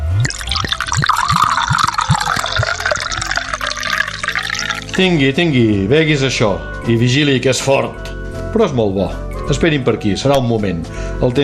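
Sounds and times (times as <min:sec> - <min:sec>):
Marc de Banyuls liquor poured from a minibar bottle into a glass: 0:00.0 - 0:05.1
speech: 0:05.0 - 0:11.4.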